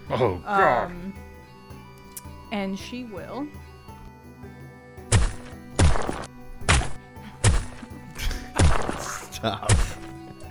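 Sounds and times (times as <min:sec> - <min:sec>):
speech: 0:00.1 - 0:01.2, 0:02.5 - 0:03.7, 0:09.4 - 0:10.0
heavy punching thumps: 0:05.1 - 0:10.1.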